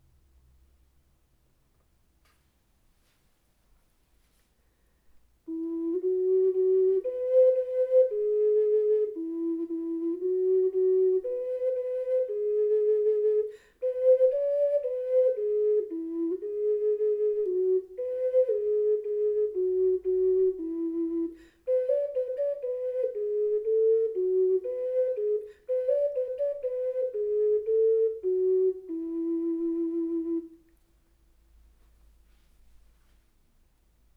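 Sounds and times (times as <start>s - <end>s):
ocarina: 5.5s - 30.8s.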